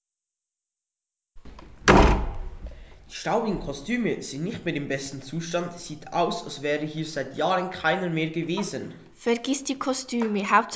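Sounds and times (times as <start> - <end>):
brief thump and scraping: 1.4 - 2.8
door forced open with a loud crash: 1.8 - 2.6
speech: 3.1 - 10.7.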